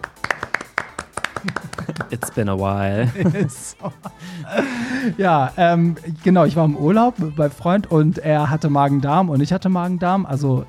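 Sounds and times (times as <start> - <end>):
small group clapping hands: 0.0 - 2.6
laughter: 1.4 - 5.5
speech: 1.4 - 10.6.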